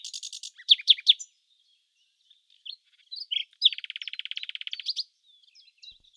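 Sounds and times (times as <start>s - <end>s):
nightingale singing: 0.0s - 6.1s.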